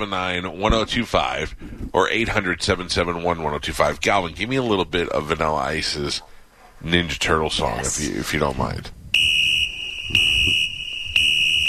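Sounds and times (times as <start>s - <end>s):
speech: 0.0s - 9.0s
loud shrill fire alarm ringing: 9.2s - 11.6s.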